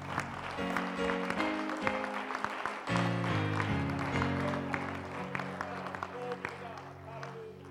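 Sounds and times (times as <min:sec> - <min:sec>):
audience clapping in praise: 0:00.0 - 0:07.7.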